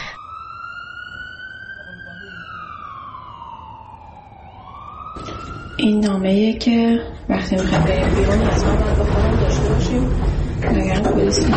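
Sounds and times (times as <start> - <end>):
ambulance siren wailing: 0.0 - 8.5
speech: 5.2 - 11.5
low rumbling background: 6.2 - 11.5.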